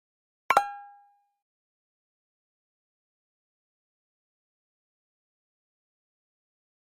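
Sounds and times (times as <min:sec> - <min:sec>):
double high guitar pop-up element: 0:00.5 - 0:01.1.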